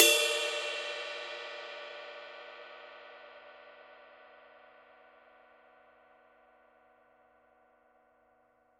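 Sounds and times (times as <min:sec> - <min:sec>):
Paiste Twenty Master Dark Crisp ride cymbal: 0:00.0 - 0:02.2.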